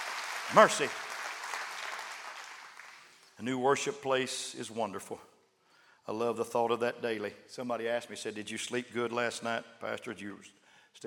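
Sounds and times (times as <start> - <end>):
church audience clapping hands: 0.0 - 3.2
speech: 0.5 - 1.0, 3.4 - 5.3, 6.1 - 11.0.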